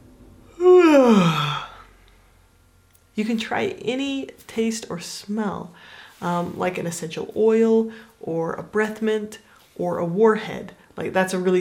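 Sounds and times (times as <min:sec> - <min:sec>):
big drawn-out breathy yawn: 0:00.6 - 0:01.9
speech: 0:03.2 - 0:11.5.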